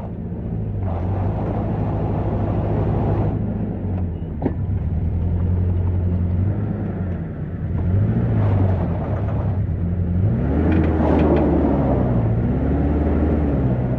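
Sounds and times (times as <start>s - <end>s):
vehicle diesel engine approaching up a hill: 0.0s - 13.9s.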